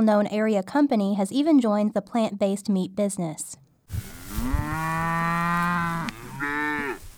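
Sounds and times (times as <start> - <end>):
speech: 0.0 - 3.6
cow mooing on a pasture in western Kentucky: 3.9 - 7.1.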